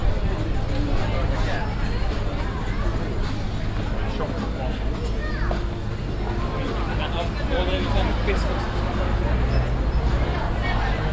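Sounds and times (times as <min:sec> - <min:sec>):
low rumble of traffic: 0:00.0 - 0:11.1
overlapping crowd chatter at a busy market: 0:00.0 - 0:11.1.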